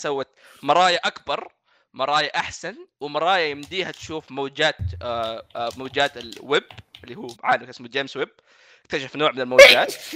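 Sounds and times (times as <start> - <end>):
speech: 0.0 - 10.1
single sharp loud sneeze: 9.6 - 10.1.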